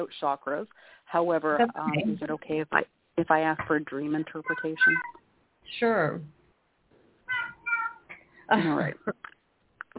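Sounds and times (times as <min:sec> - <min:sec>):
speech: 0:00.0 - 0:06.4, 0:08.5 - 0:09.3
cat in heat yowling: 0:07.3 - 0:08.1.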